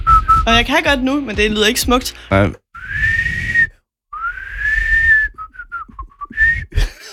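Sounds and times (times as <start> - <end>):
breathy off-pitch mouth whistling: 0.0 - 0.5, 2.7 - 6.9
speech: 0.5 - 2.6.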